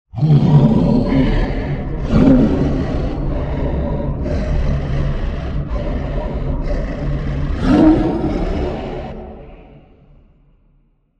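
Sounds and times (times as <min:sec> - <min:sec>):
demon sounds: 0:00.1 - 0:10.8.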